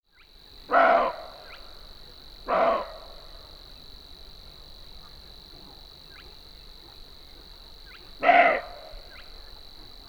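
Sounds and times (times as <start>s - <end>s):
roe deer barking: 0.7s - 1.3s, 2.5s - 3.1s, 8.2s - 9.0s.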